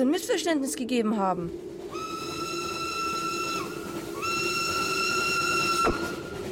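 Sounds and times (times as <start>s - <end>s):
speech: 0.0s - 1.9s
constant hiss and rumble: 0.0s - 6.5s
loud steam train whistle blasts: 1.9s - 6.5s.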